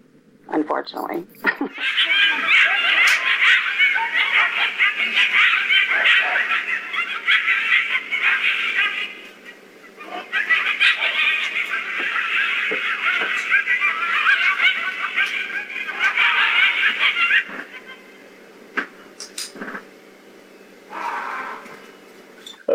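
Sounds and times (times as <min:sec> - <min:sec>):
speech: 0:00.5 - 0:02.8
laughter: 0:01.4 - 0:18.0
chorus of coyotes yipping and howling: 0:01.7 - 0:18.4, 0:20.4 - 0:22.1
raw yelling cry: 0:01.8 - 0:09.3, 0:10.0 - 0:18.1.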